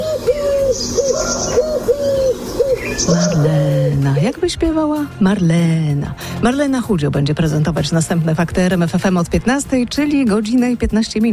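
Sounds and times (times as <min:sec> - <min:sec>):
Eurasian collared dove cooing: 0:00.0 - 0:04.2
speech: 0:03.0 - 0:11.3.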